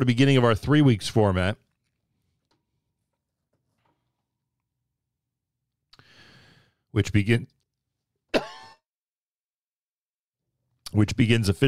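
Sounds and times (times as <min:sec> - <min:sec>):
speech: 0:00.0 - 0:01.6, 0:06.9 - 0:07.6, 0:10.9 - 0:11.6
breathy inhale: 0:06.0 - 0:06.9
person coughing harshly and throatily: 0:08.3 - 0:08.8.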